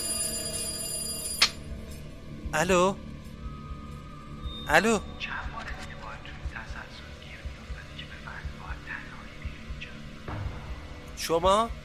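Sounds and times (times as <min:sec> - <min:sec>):
telephone bell ringing: 0:00.0 - 0:01.7
speech: 0:02.5 - 0:03.1, 0:04.7 - 0:05.4, 0:11.2 - 0:11.8.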